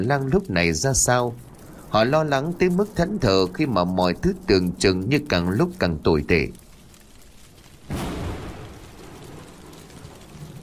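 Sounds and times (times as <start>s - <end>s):
speech: 0.0s - 6.6s
steady hiss: 0.0s - 10.6s
thunderclap in a storm: 0.0s - 10.6s.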